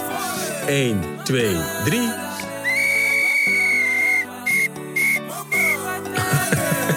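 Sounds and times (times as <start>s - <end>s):
steady musical backing: 0.0s - 6.9s
speech: 0.7s - 2.2s
yellow referee-style whistle blasts: 2.6s - 5.8s
laughter: 5.6s - 6.9s.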